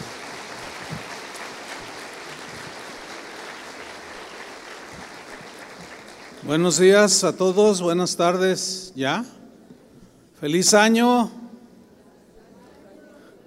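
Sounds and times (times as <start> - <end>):
crowd clapping steadily: 0.0 - 7.2
speech: 6.4 - 9.4, 10.4 - 11.4.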